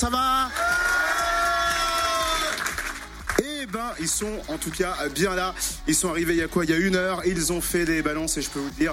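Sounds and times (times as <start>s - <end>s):
speech: 0.0s - 0.4s, 4.0s - 8.9s
studio audience cheering and shouting: 0.2s - 2.8s
crowd high-pitched whoops and screams: 0.4s - 2.7s.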